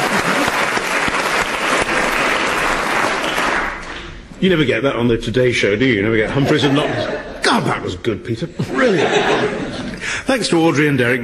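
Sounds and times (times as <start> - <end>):
laughter: 0.0 - 0.8, 6.1 - 7.8, 8.4 - 10.5
audience applause: 0.0 - 4.2
speech: 4.4 - 11.2.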